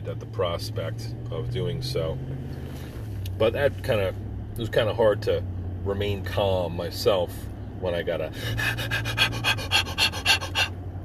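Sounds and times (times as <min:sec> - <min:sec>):
speech: 0:00.1 - 0:10.2
voice imitating a dog panting: 0:08.4 - 0:10.8.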